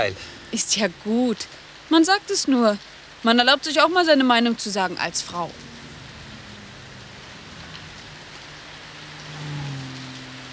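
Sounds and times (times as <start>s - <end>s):
speech: 0.0s - 5.7s
steady rain falling all around: 0.0s - 10.5s
low tonal hum: 5.0s - 10.5s.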